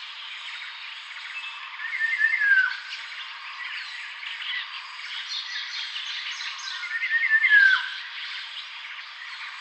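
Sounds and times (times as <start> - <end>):
dark-throated oriole loud descending slurred calls: 0.0 - 9.5.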